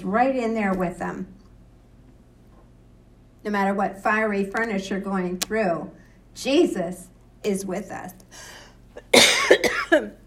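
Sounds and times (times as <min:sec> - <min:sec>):
speech: 0:00.0 - 0:01.4, 0:03.4 - 0:10.2
harsh rasping coughing: 0:09.0 - 0:10.2.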